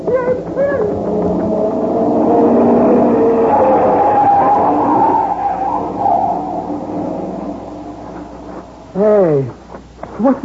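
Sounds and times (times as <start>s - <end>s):
brief squealing whine: 0.0s - 9.2s
car speeding past: 1.0s - 8.9s.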